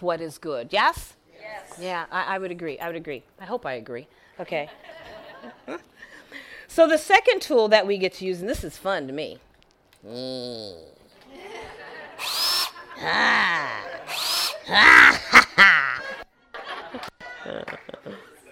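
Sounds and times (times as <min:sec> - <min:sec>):
speech: 0:00.0 - 0:11.5, 0:13.0 - 0:15.8
people chuckling: 0:11.1 - 0:18.5
power drill whirring in revving bursts: 0:12.2 - 0:14.8.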